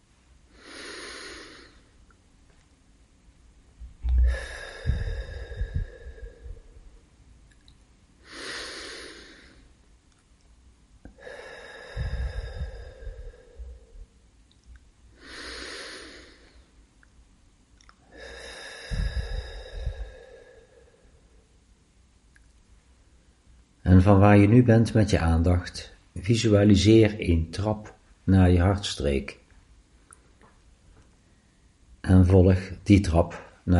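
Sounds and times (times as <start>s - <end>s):
slow deep breaths in and out: 0.4s - 2.2s, 3.7s - 7.2s, 8.2s - 9.8s, 11.0s - 14.4s, 15.1s - 16.8s, 17.9s - 21.7s, 30.0s - 31.9s
speech: 24.0s - 29.4s, 32.1s - 33.7s.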